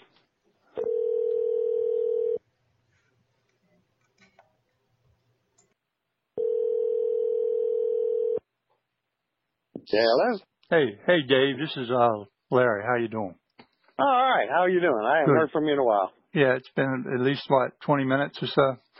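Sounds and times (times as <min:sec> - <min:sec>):
telephone ringback tone on an outgoing call: 0:00.8 - 0:02.4, 0:06.4 - 0:08.4
speech: 0:09.9 - 0:13.4, 0:14.0 - 0:18.9.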